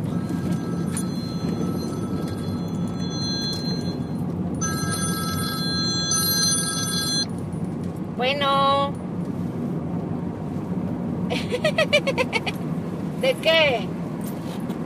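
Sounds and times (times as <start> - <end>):
telephone ringing with a warbling electronic tone: 0.0 - 7.3
steady rumbling noise: 0.0 - 14.8
speech: 13.3 - 14.0.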